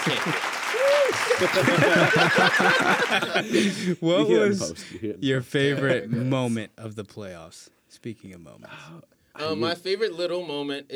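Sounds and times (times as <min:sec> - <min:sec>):
applause sound effect clapping: 0:00.0 - 0:03.8
voices whooping and laughing: 0:00.0 - 0:03.8
speech: 0:00.1 - 0:10.9.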